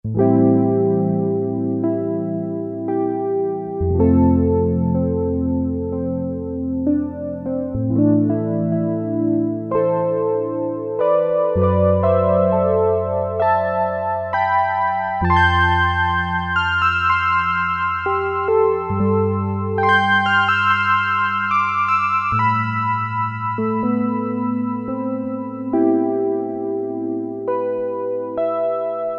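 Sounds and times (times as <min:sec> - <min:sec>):
mellow synth piano preset on a Roland Juno-60: 0:00.0 - 0:29.1.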